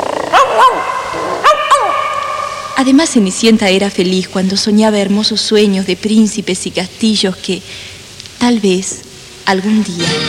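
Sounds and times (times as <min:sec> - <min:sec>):
dog barking in short high yelps: 0:00.3 - 0:02.7
speech: 0:02.8 - 0:10.2.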